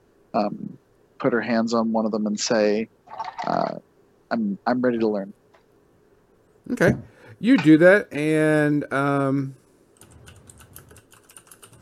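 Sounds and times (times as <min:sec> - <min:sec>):
speech: 0:00.4 - 0:05.4, 0:06.7 - 0:09.6
rapid keystrokes on a computer keyboard: 0:10.0 - 0:11.8.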